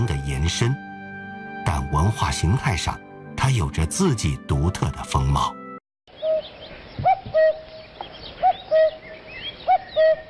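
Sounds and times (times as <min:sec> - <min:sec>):
speech: 0:00.0 - 0:00.8, 0:01.8 - 0:05.6
cuckoo calling in the mountains: 0:06.1 - 0:10.2
faint birds chirping outdoors: 0:06.1 - 0:10.2.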